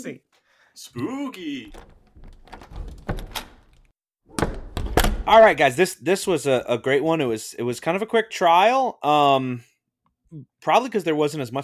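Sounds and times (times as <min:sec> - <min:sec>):
speech: 0:00.0 - 0:02.0, 0:05.3 - 0:09.7, 0:10.3 - 0:11.6
crimson door to a deliberation room creaking open: 0:01.7 - 0:05.6.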